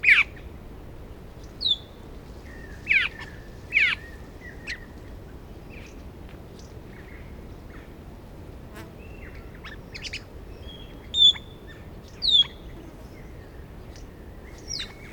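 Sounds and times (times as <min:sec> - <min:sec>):
Australasian figbird calls: 0:01.4 - 0:04.9, 0:09.2 - 0:15.1.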